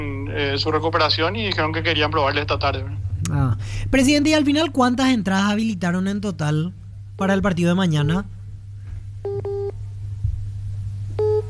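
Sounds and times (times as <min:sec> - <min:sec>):
constant low hum: 0:00.0 - 0:11.4
speech: 0:00.4 - 0:08.4
telephone busy tone after a call dropped: 0:11.2 - 0:11.4.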